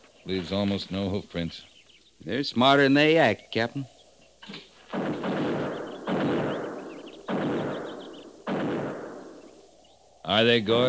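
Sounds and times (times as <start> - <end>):
speech: 0.2 - 4.7, 10.3 - 10.8
buffalo guns firing: 4.5 - 9.8.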